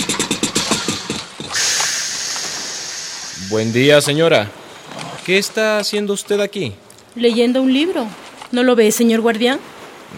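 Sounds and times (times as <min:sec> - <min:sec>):
lake guard's motorboat engine: 0:00.0 - 0:03.8
speech: 0:03.5 - 0:04.6, 0:05.3 - 0:10.1.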